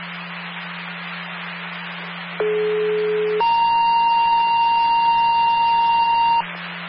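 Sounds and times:
hissing humming radio channel: 0.0 - 6.8
fire department dispatch alert tone for a fire alarm call: 2.4 - 6.4.

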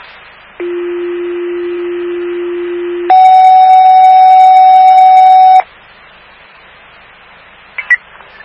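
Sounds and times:
radio dispatch alert tone for an EMS mutual aid call: 0.6 - 5.6.

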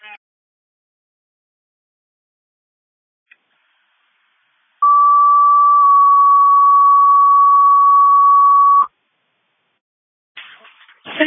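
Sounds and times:
loud steady electronic fire dispatch alert tone: 4.8 - 8.9.

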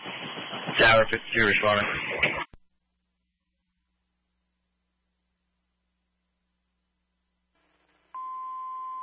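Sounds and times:
fire dispatch radio static hiss: 0.0 - 2.6, 7.6 - 8.2
speech: 0.8 - 2.4
fire dispatch radio click: 1.8 - 2.6.

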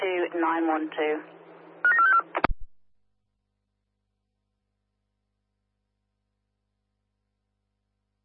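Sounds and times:
people talking: 0.0 - 1.2
telephone keypad dialing tones: 1.9 - 2.3.

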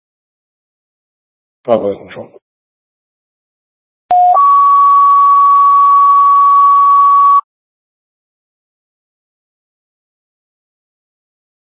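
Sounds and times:
speech: 1.6 - 2.4
EMS radio dispatch alert tones: 4.1 - 7.4.

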